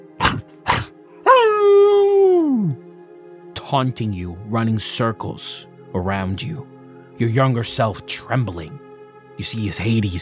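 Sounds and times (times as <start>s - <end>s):
wolf barking: 0.2s - 2.0s
wolf howling: 0.2s - 2.8s
speech: 3.7s - 8.8s, 9.4s - 10.2s.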